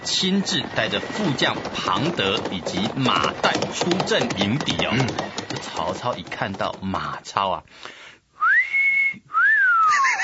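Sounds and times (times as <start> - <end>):
speech: 0.1 - 8.0
man whistling two long loud notes: 8.4 - 9.9.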